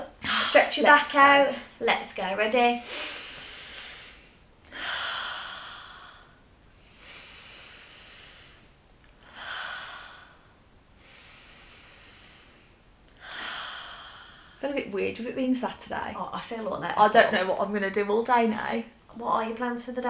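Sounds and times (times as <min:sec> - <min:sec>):
speech: 0:00.4 - 0:03.2, 0:15.0 - 0:20.0
person breathing deeply: 0:02.8 - 0:14.6.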